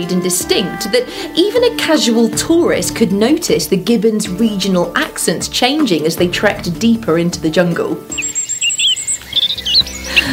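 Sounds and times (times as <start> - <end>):
speech: 0.0 - 8.2
birds singing in an English dawn chorus: 8.0 - 10.3.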